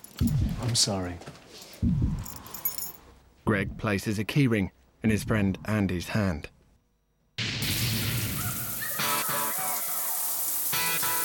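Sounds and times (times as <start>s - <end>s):
speech: 0.2s - 2.2s, 3.5s - 6.5s
shower water gushing: 7.7s - 11.2s.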